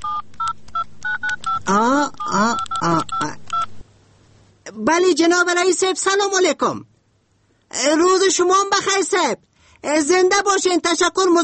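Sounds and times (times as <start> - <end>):
telephone keypad beeps while a number is dialed: 0.0 - 3.7
speech: 1.7 - 3.0, 4.9 - 6.9, 7.8 - 11.4.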